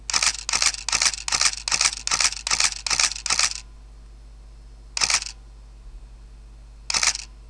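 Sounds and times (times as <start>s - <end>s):
Nikon D50 camera shutter continuous shooting: 0.0s - 3.7s, 5.0s - 5.4s, 6.9s - 7.4s.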